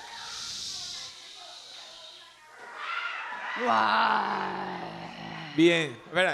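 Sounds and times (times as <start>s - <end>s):
crowd hissing to imitate torrential pouring rain: 0.0s - 2.2s
crowd whooping and cheering: 2.6s - 4.9s
speech: 3.6s - 4.8s, 5.6s - 6.3s.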